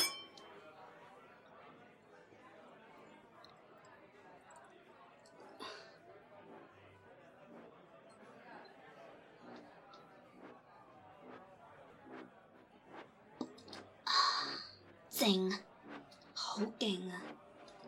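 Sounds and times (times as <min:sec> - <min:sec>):
glasses of liquor clinking in a toast: 0:00.0 - 0:00.5
crowd chatter: 0:00.0 - 0:17.8
speech: 0:15.2 - 0:15.7, 0:16.6 - 0:17.4.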